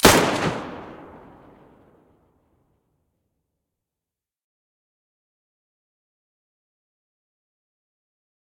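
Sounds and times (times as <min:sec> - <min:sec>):
Mosin rifle muzzle blast: 0:00.0 - 0:01.8.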